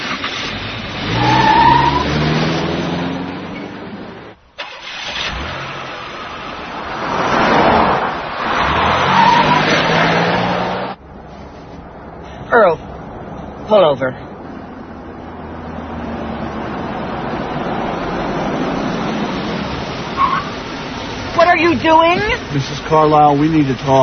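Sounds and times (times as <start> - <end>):
car engine revving and accelerating: 0.0 - 11.1, 14.4 - 24.0
broadband road noise: 0.0 - 24.0
speech: 13.7 - 14.3, 21.8 - 24.0.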